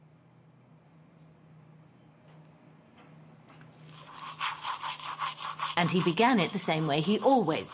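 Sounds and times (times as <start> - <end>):
toothbrush scrubbing teeth in a bathroom: 3.8 - 7.7
speech: 5.8 - 7.7.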